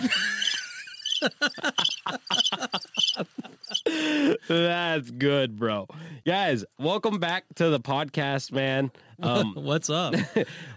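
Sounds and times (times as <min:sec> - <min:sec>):
laughter: 0:00.0 - 0:04.8, 0:09.2 - 0:10.7
crickets chirping sound effect: 0:00.2 - 0:03.9
speech: 0:01.2 - 0:10.7.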